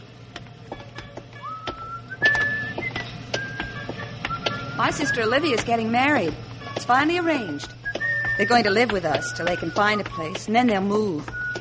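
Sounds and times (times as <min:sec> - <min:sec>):
low steady hum: 0:00.0 - 0:11.5
person whistling a soft brief tune: 0:01.4 - 0:05.5, 0:06.8 - 0:11.5
speech: 0:04.8 - 0:07.8, 0:08.4 - 0:11.4.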